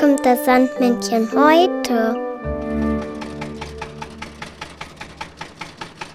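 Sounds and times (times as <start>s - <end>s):
speech: 0.2s - 2.1s
small tractor engine chugging: 3.1s - 6.1s.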